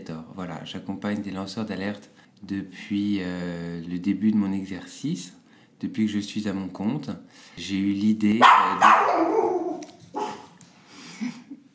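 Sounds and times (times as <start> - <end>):
speech: 0.0 - 9.5
dog barking: 8.4 - 10.6.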